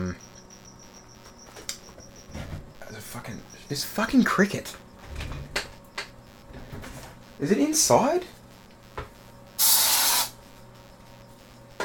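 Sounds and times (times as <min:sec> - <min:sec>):
speech: 0:03.7 - 0:04.8, 0:07.4 - 0:08.4
aerosol spray hissing: 0:09.6 - 0:10.4.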